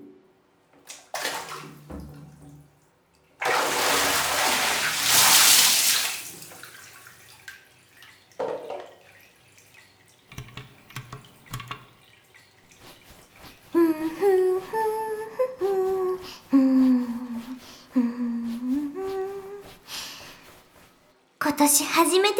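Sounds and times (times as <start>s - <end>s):
bath water gushing: 0.9s - 14.5s
person humming a tune: 13.7s - 19.7s
speech: 21.6s - 22.3s.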